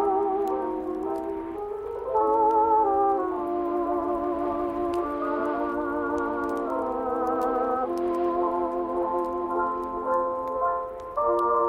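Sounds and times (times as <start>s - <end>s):
oldies music playing softly from another room: 0.0s - 11.6s
faint ticks: 0.1s - 11.6s.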